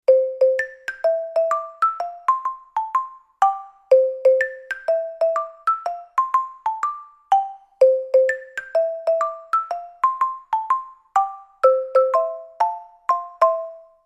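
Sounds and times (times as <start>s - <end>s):
SX 1600 xylophone played with two mallets: 0.1s - 14.0s.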